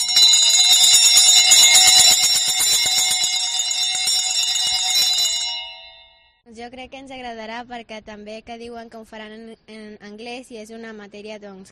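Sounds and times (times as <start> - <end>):
frantic peal of all the church bells rung for visitors: 0.0 - 6.2
speech: 6.6 - 11.7.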